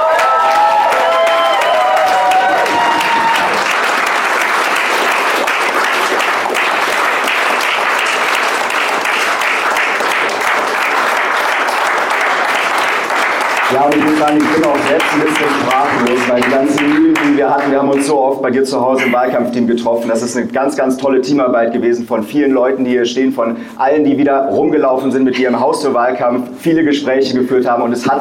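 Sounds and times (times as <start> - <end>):
whistles and cheers from a crowd: 0.0 - 3.7
gathered crowd applauding: 0.0 - 18.2
speech: 13.8 - 28.1.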